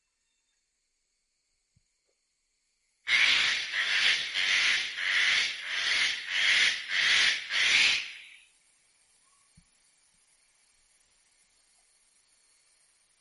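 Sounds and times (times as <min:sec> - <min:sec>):
eclectus parrot rasping screeches: 0:03.1 - 0:08.4.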